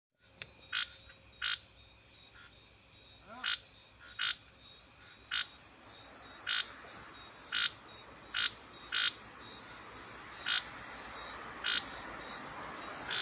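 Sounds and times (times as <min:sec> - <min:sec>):
Scinax boesemani frog calling: 0:00.7 - 0:01.6, 0:03.2 - 0:04.4, 0:05.0 - 0:05.6, 0:06.3 - 0:09.3, 0:10.4 - 0:10.9, 0:11.6 - 0:12.1, 0:12.9 - 0:13.2.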